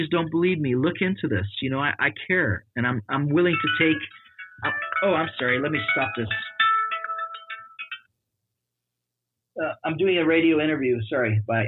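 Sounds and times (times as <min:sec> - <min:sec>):
speech: 0:00.0 - 0:06.5, 0:09.6 - 0:11.6
mobile phone ringtone: 0:03.5 - 0:08.1.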